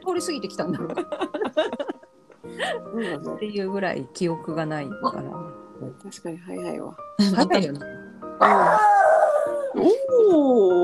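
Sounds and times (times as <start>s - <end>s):
speech: 0.1s - 1.8s, 2.7s - 5.4s, 6.0s - 9.1s, 9.8s - 10.8s
laughter: 0.6s - 3.3s
dog howling: 8.4s - 10.8s.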